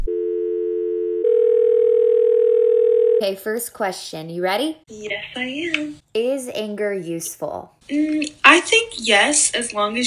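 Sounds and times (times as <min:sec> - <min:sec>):
telephone dial tone of an outgoing call: 0:00.0 - 0:03.2
speech: 0:03.2 - 0:10.0.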